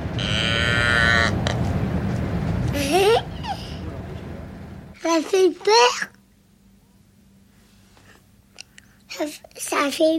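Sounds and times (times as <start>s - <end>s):
steady rumbling background: 0.0s - 6.4s
cow mooing: 0.2s - 1.4s
speech: 5.2s - 6.1s, 9.2s - 10.1s.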